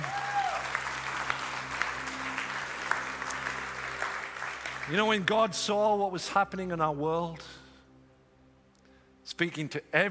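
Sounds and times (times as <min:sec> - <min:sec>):
room full of people applauding on Good Friday: 0:00.0 - 0:05.3
speech: 0:04.9 - 0:07.6, 0:09.4 - 0:10.0.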